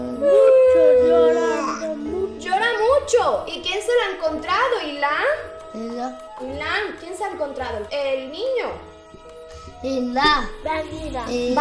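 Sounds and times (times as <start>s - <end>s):
person imitating a crying baby: 0.0s - 2.4s
speech: 0.2s - 0.4s, 3.1s - 8.9s, 9.8s - 11.5s.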